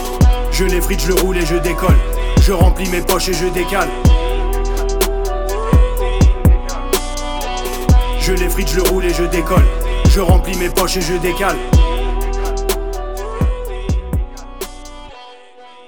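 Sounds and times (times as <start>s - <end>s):
sustained melodic backing: 0.0s - 15.1s
male voice rapping in French over a beat: 0.0s - 15.8s
speech: 0.6s - 4.2s, 8.3s - 11.8s
punchy kick drums: 1.9s - 2.8s, 5.8s - 6.7s, 9.6s - 10.5s, 13.4s - 14.4s.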